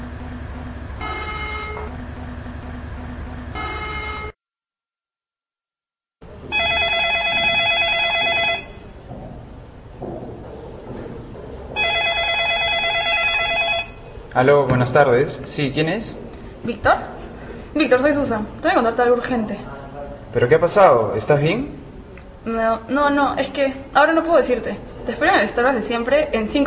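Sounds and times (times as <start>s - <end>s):
electronic ring tones of an unanswered outgoing phone call: 1.0s - 2.2s, 3.5s - 4.4s, 6.5s - 8.9s, 11.8s - 14.1s
speech: 14.4s - 17.1s, 17.8s - 19.7s, 20.4s - 21.8s, 22.4s - 26.6s.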